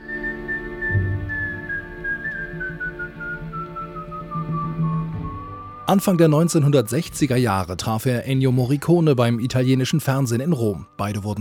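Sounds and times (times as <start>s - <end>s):
person whistling a clear sustained melody: 0.0s - 7.2s
soft instrumental backing with low bass notes: 0.0s - 11.3s
speech: 5.9s - 11.3s.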